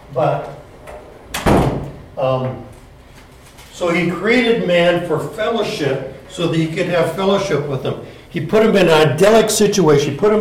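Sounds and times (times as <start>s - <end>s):
speech: 0.1s - 0.6s, 2.2s - 2.7s, 3.8s - 10.4s
door swinging shut with a solid thud: 0.8s - 2.6s.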